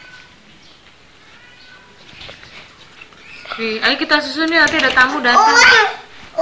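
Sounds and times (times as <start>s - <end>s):
cat meowing: 0.0s - 0.4s, 1.2s - 2.0s
speech: 3.6s - 6.4s.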